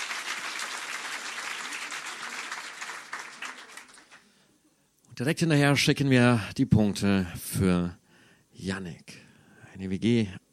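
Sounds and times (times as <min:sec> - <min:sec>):
audience applause at a poetry slam: 0:00.0 - 0:04.3
speech: 0:05.2 - 0:08.0, 0:08.6 - 0:09.2, 0:09.8 - 0:10.4.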